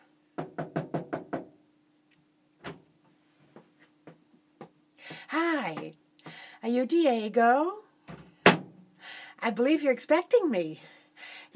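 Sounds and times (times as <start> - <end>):
knocking on a hotel room door: 0.4 - 1.5
faint steady hum: 1.3 - 11.5
speech: 6.7 - 7.8, 9.5 - 11.0.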